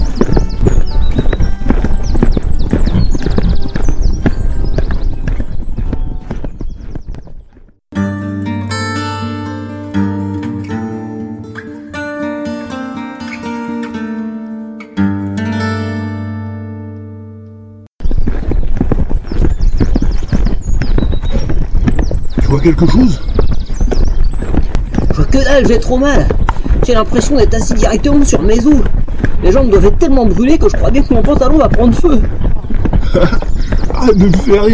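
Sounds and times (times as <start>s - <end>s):
horses galloping: 0.0s - 7.8s, 18.0s - 34.7s
music: 8.0s - 17.9s
speech: 22.6s - 23.3s, 25.3s - 32.4s, 33.1s - 34.7s.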